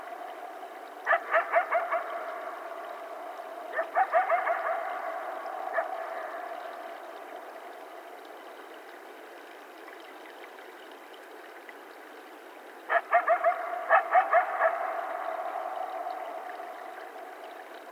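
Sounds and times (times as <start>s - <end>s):
several coyotes yipping: 0.0s - 7.6s, 12.9s - 17.4s.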